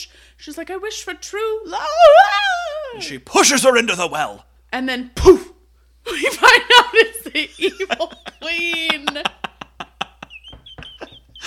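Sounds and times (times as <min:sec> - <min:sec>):
speech: 0:00.0 - 0:05.5, 0:06.1 - 0:06.6, 0:07.4 - 0:09.4
laughter: 0:06.2 - 0:11.4
table knocking: 0:10.1 - 0:11.4
soft thumps: 0:10.4 - 0:11.4.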